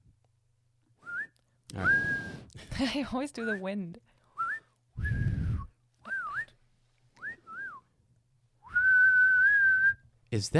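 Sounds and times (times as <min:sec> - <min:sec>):
person whistling to call a horse: 0:01.0 - 0:02.5, 0:04.3 - 0:06.6, 0:07.2 - 0:07.9, 0:08.6 - 0:10.1
speech: 0:02.8 - 0:04.1, 0:10.4 - 0:10.5.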